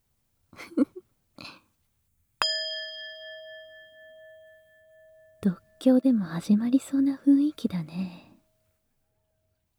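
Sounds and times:
metal singing bowl struck and ringing: 2.4 - 6.0
speech: 5.4 - 8.2
soft vocal noises: 5.4 - 8.4.

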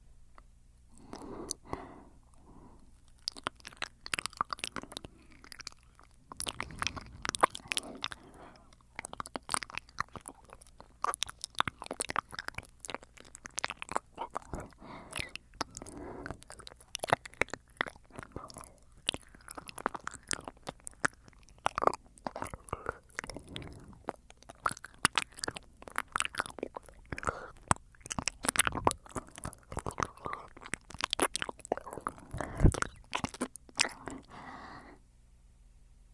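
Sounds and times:
wet mouth clicks and smacks from ASMR ear cleaning with the mouth: 0.3 - 35.0
faint breathy background: 0.9 - 9.2, 14.1 - 20.3, 22.3 - 24.2, 27.1 - 27.7, 28.8 - 30.7, 31.3 - 35.1.

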